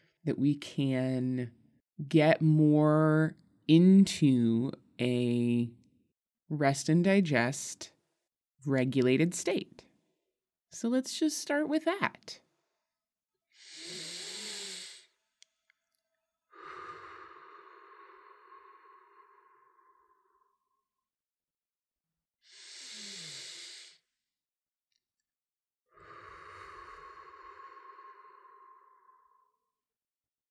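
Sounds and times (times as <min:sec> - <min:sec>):
speech: 0:00.2 - 0:05.8, 0:06.5 - 0:08.0, 0:08.6 - 0:09.9, 0:10.7 - 0:12.4
slow deep breaths: 0:13.6 - 0:15.2, 0:16.5 - 0:20.6, 0:22.5 - 0:24.0, 0:26.0 - 0:29.7.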